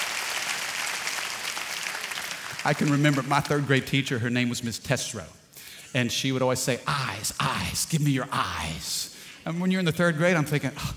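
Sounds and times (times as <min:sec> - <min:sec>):
audience applause honoring teachers: 0:00.0 - 0:03.7
speech: 0:02.6 - 0:10.9.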